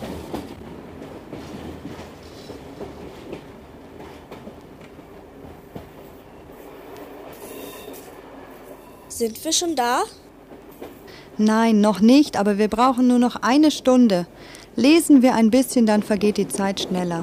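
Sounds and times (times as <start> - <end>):
train rolling along rails heard from inside a carriage: 0.0 - 17.2
metallic squeaks: 7.4 - 8.1
speech: 9.2 - 10.2, 11.4 - 17.2.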